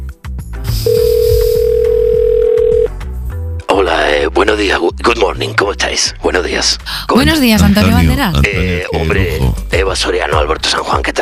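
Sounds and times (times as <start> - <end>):
lively music bed: 0.0 - 11.2
telephone dial tone: 0.8 - 2.9
speech: 4.6 - 11.2.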